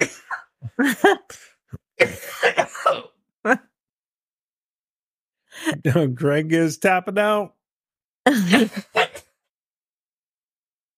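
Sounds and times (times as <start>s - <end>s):
harsh coughing from too much pepper: 0.0s - 3.6s, 8.3s - 9.4s
speech: 0.8s - 1.5s, 5.8s - 7.6s, 8.2s - 9.0s.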